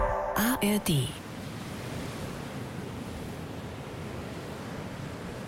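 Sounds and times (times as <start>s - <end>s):
wind on Baltic coast: 0.2s - 5.4s
speech: 0.6s - 1.2s
surf washing onto a shore on Baltic coast: 1.2s - 5.4s.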